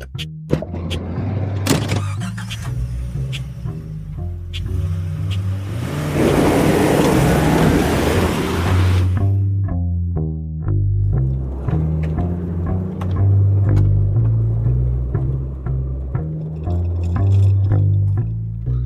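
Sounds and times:
car engine starting and car pulling away with road noise: 0.1s - 9.8s, 10.7s - 18.7s.

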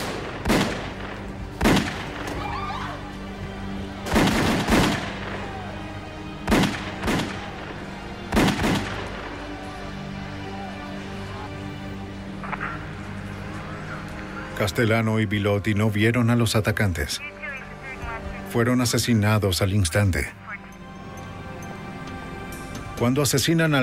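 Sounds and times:
gunfire in a shooting attack outside a Manhattan restaurant: 0.0s - 2.4s, 4.0s - 5.4s, 6.4s - 7.7s, 8.3s - 9.3s
steady droning background: 0.0s - 23.8s
speech: 14.6s - 17.4s, 18.5s - 20.4s, 23.0s - 23.8s.

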